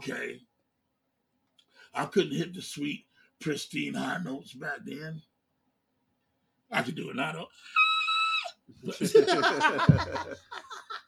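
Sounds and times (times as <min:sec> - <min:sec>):
speech: 0:00.0 - 0:00.5, 0:01.9 - 0:05.3, 0:06.7 - 0:07.8, 0:08.7 - 0:10.8
inhaled reverse scream: 0:07.7 - 0:08.6
laughter: 0:08.8 - 0:11.0.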